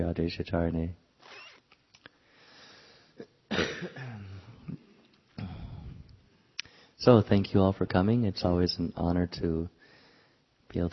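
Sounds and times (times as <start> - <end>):
speech: 0.0 - 1.0, 3.2 - 4.8, 7.0 - 9.8, 10.7 - 10.9
breathing: 2.1 - 3.2, 5.4 - 7.0, 9.8 - 10.5
harsh throaty coughing: 3.2 - 4.9.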